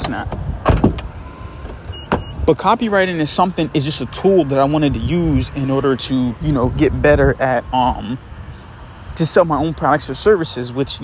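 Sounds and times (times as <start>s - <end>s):
clunks and rustles of someone climbing out of a car: 0.0s - 2.4s
speech: 0.1s - 0.4s, 2.4s - 8.3s, 9.2s - 11.0s
car door thump: 0.3s - 2.4s.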